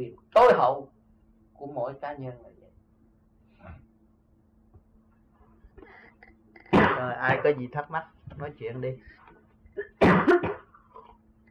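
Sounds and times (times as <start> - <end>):
speech: 0.0 - 0.9, 1.6 - 2.6, 7.0 - 9.2
person with a cold coughing: 6.6 - 7.5, 9.8 - 11.2.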